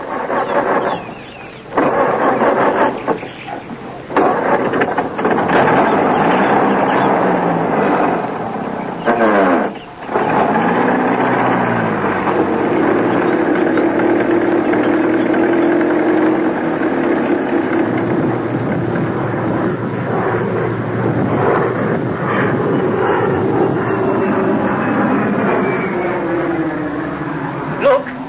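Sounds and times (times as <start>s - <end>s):
old car engine driving: 0.0s - 28.2s.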